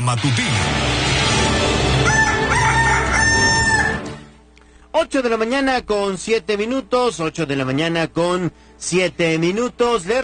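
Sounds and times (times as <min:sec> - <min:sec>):
speech: 0:00.0 - 0:02.3, 0:05.0 - 0:10.2
rooster crowing in a henhouse: 0:01.8 - 0:04.3
dense noisy background of fowl in a henhouse: 0:02.0 - 0:04.2.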